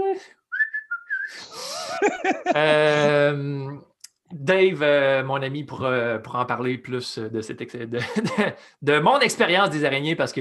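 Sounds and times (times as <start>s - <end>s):
person whistling wavering notes: 0.5s - 1.6s
person laughing: 1.5s - 3.3s, 8.0s - 8.5s
long drawn-out voiced hum: 1.5s - 3.7s
speech: 2.0s - 10.3s.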